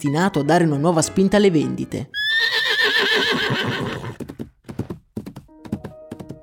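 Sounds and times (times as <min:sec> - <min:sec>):
speech: 0:00.0 - 0:03.4
racehorse whinnying on a country estate: 0:02.2 - 0:04.3
sharp hoof clops and thuds: 0:03.8 - 0:06.4.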